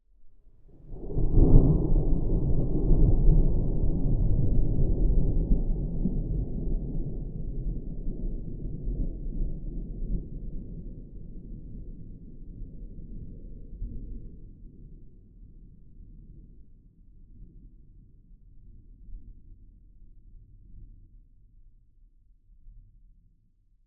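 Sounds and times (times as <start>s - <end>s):
moderately distant thunder: 0.8s - 9.2s.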